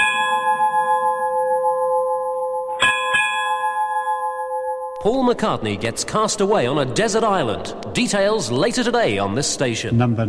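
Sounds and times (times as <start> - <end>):
bell ringing: 0.0 - 5.0
speech: 5.0 - 10.2.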